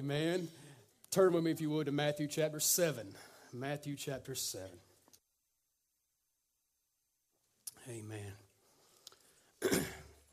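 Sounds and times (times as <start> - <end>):
speech: 0.0 - 4.9, 7.8 - 8.4
throat-clearing cough: 9.6 - 10.2.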